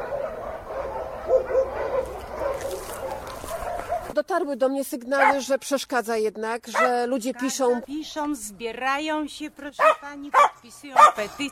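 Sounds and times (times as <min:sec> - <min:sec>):
dogs barking at an animal shelter: 0:00.0 - 0:04.2, 0:05.2 - 0:05.5, 0:06.7 - 0:07.0, 0:09.8 - 0:11.3
speech: 0:04.2 - 0:11.5.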